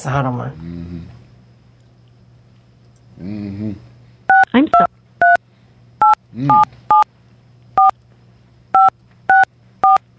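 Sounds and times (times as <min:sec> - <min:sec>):
speech: 0:00.0 - 0:01.2, 0:03.2 - 0:03.9, 0:04.5 - 0:04.9, 0:06.3 - 0:06.8
low steady hum: 0:00.0 - 0:10.1
touch-tone phone keypad beeps entering a phone number on an automated line: 0:04.3 - 0:05.4, 0:06.0 - 0:07.0, 0:08.8 - 0:10.0.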